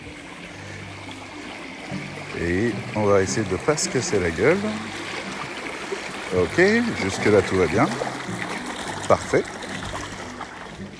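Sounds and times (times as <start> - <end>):
river water rushing while crossing on foot: 0.0 - 10.9
speech: 2.4 - 5.0, 6.3 - 8.5, 9.1 - 9.6.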